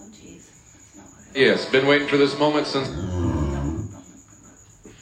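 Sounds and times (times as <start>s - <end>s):
speech: 1.3s - 3.2s
pig waking up grunting: 2.2s - 4.0s
pig snorting: 2.4s - 4.0s.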